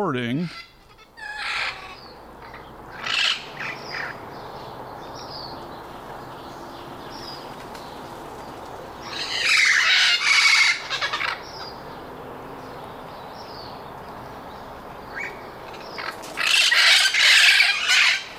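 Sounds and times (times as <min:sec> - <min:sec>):
speech: 0:00.0 - 0:00.7
red-crowned parrots squawking and squealing: 0:00.4 - 0:04.2, 0:09.0 - 0:11.8, 0:15.1 - 0:18.3.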